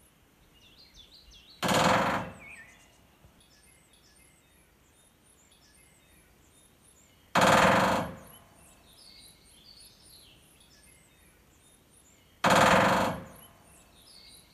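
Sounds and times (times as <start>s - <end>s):
small birds twittering: 0.0s - 14.5s
woodpecker drumming: 1.6s - 2.9s, 7.3s - 8.6s, 12.4s - 13.8s.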